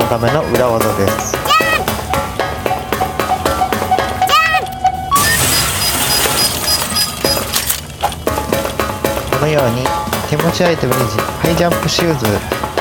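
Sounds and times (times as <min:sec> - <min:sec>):
speech: 0:00.1 - 0:01.5, 0:09.4 - 0:12.6
rhythmic electronic video game music: 0:01.1 - 0:07.6
video game case smashing with a shattering crash: 0:05.1 - 0:08.8.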